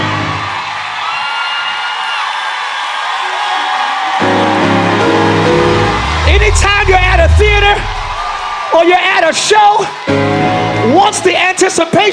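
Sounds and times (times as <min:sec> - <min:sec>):
audience cheering and whooping in praise of God: 0:00.4 - 0:08.8
speech: 0:08.7 - 0:12.1.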